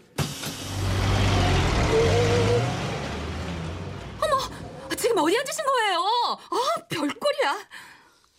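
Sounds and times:
bus engine revving as it pulls away: 0.0s - 5.5s
speech: 5.2s - 8.0s.

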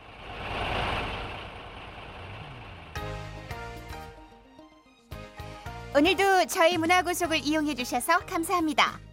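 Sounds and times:
express bus engine idling: 0.0s - 4.1s
speech: 6.0s - 9.1s.

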